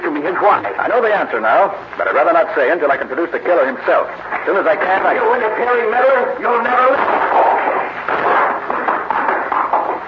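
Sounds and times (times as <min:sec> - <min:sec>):
speech: 0:00.2 - 0:07.4
gunshots fired to shoot out the lights: 0:06.8 - 0:10.0.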